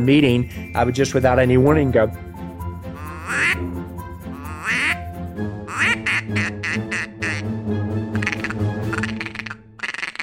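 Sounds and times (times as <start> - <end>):
speech: 0.0 - 2.3
handheld duck call blowing male and female mallard quacks: 3.0 - 3.6, 4.4 - 5.0, 5.7 - 7.4, 8.1 - 10.2.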